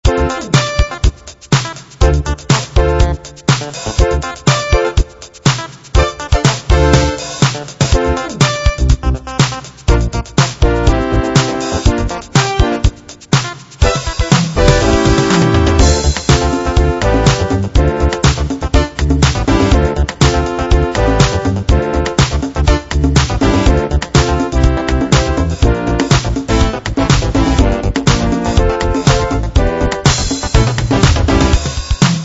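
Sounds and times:
90s dance music: 0.0 - 32.2.

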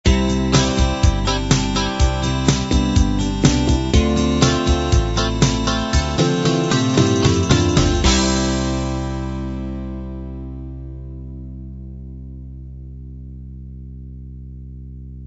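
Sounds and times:
light rock music ending: 0.0 - 12.0.

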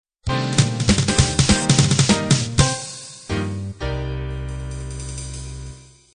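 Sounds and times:
bop sound: 0.3 - 3.7.

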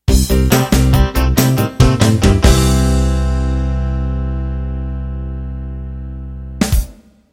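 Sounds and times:
rock boogie ending: 0.1 - 7.0.

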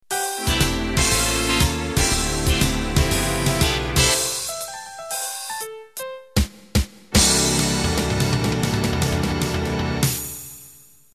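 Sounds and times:
foxtrot music ending: 0.1 - 10.8.

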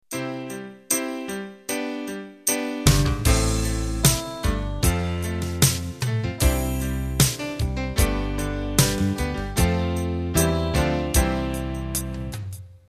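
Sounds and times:
pop music intro: 2.5 - 12.5.

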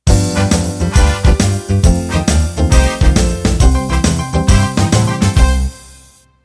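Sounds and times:
1950s-style rock music ending: 0.1 - 6.1.

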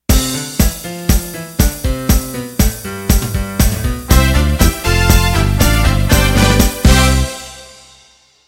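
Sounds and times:
Motown-style music: 0.0 - 8.0.

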